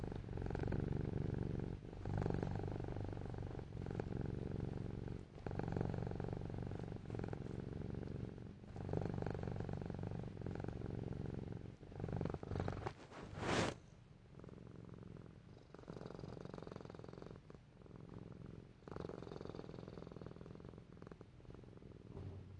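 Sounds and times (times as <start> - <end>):
house cat purring: 0.0 - 22.5
short sharp rustle or bump: 12.8 - 13.8.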